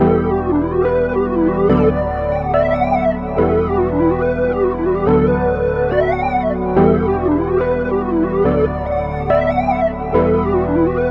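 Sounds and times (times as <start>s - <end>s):
drippy music loop in E minor: 0.0s - 11.0s.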